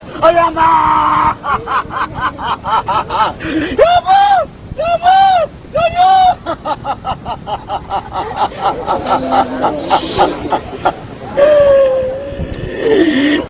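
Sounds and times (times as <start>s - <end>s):
wail: 0.3s - 1.4s, 3.8s - 6.4s, 11.4s - 13.4s
laughter: 1.0s - 3.8s, 6.3s - 12.0s.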